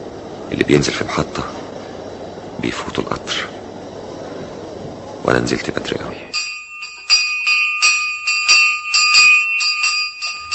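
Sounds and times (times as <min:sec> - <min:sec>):
speech: 0:00.5 - 0:01.6, 0:02.6 - 0:03.6, 0:05.2 - 0:06.5
school bell ringing: 0:06.3 - 0:10.5.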